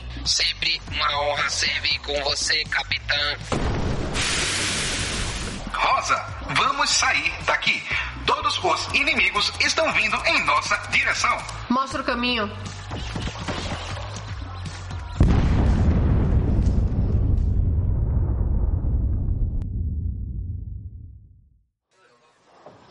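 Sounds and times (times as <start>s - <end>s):
speech: 0.2s - 3.7s, 5.8s - 12.8s
transmitter exploding in a video game: 3.5s - 5.7s, 15.2s - 21.6s.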